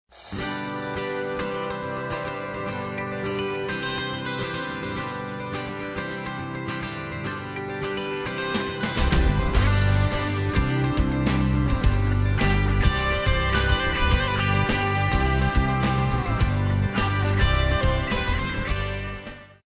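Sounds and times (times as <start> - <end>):
alternative pop rock music: 0.2 - 19.6.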